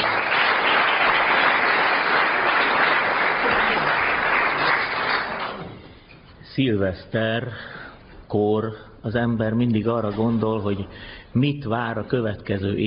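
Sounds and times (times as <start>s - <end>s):
crowd applauding: 0.0s - 5.9s
speech: 6.6s - 12.8s.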